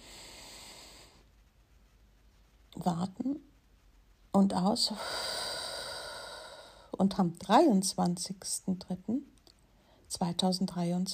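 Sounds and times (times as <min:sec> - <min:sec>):
long deep inhale and exhale: 0:00.0 - 0:01.3, 0:05.0 - 0:07.0
speech: 0:02.8 - 0:03.5, 0:04.4 - 0:05.4, 0:07.0 - 0:09.3, 0:10.1 - 0:11.1.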